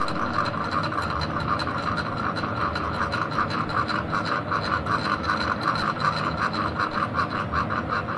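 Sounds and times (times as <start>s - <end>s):
small fan running: 0.0s - 8.1s.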